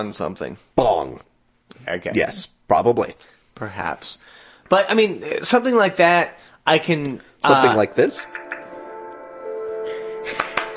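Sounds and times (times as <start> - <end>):
speech: 0.0 - 8.4
soft sustained tonal music bed: 7.5 - 10.7
sharp hand claps: 10.3 - 10.7.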